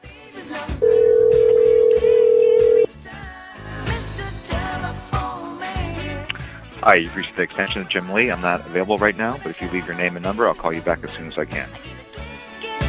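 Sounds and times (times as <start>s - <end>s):
music: 0.0s - 12.8s
telephone ringing tone as a call rings through to voicemail: 0.8s - 2.9s
speech: 6.8s - 11.9s.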